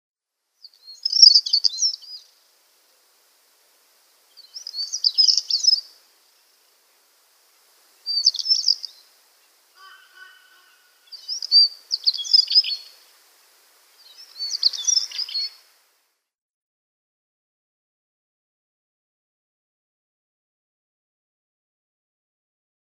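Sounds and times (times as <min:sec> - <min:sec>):
Canary Island Stonechat singing: 0:00.6 - 0:02.3, 0:04.2 - 0:06.6, 0:08.0 - 0:13.0, 0:13.9 - 0:15.6.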